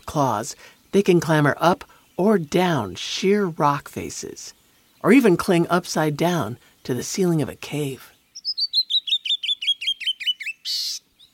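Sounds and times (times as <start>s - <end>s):
canyon wren song: 0.0s - 11.3s
speech: 0.1s - 8.1s.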